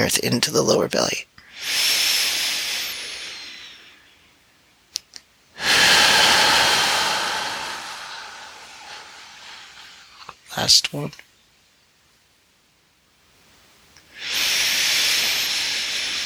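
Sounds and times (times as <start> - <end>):
speech: 0.0 - 1.9, 10.6 - 11.3
forceful exhaling breath during a guided breathing exercise: 1.4 - 4.1, 5.6 - 10.3, 14.1 - 16.2.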